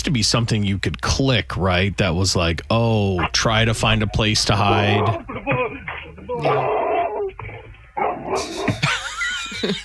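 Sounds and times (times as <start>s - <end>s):
speech: 0.0s - 5.6s, 6.3s - 6.7s, 9.6s - 9.8s
giant dog barking: 3.2s - 8.8s
giant dog whining yelps: 4.7s - 8.8s
laughter: 8.3s - 9.8s.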